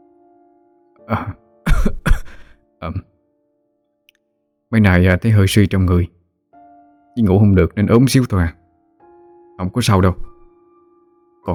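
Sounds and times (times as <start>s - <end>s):
speech: 1.0s - 1.4s, 2.8s - 3.1s, 4.7s - 6.2s, 7.2s - 8.6s, 9.6s - 10.3s
thin pale sickly man coughing and clearing his throat: 1.1s - 2.6s.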